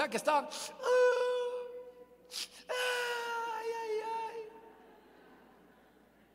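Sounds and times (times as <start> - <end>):
speech: 0.0 - 1.2, 2.3 - 2.9
voice imitating widows wailing and weeping: 0.8 - 4.6.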